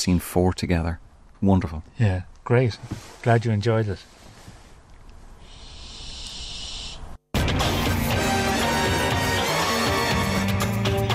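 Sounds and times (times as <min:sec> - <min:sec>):
speech: 0:00.0 - 0:04.2
barn owls hissing in a breathy rasp: 0:05.3 - 0:07.2
loud instrumental music: 0:07.4 - 0:11.1.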